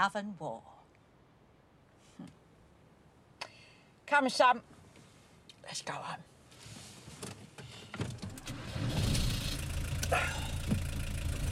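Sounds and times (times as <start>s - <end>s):
speech: 0.0s - 0.8s, 2.2s - 2.4s, 4.1s - 4.8s, 5.7s - 6.3s, 10.1s - 10.4s
car engine revving as the vehicle pulls off and drives away: 8.3s - 11.5s.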